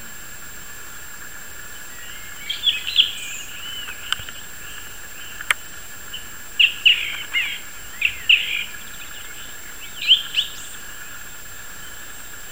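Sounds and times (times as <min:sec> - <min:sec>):
constant faint hum: 0:00.0 - 0:12.5
song thrush giving whistled and scratchy phrases: 0:00.0 - 0:12.5
sharp clicks: 0:03.8 - 0:04.4, 0:05.3 - 0:05.7.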